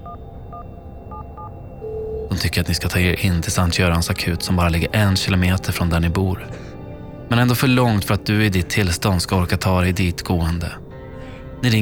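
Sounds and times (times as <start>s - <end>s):
telephone keypad beeps dialling a health advice line: 0.0s - 2.4s
steady telephone tone: 0.0s - 11.8s
speech: 2.4s - 10.8s, 11.6s - 11.8s.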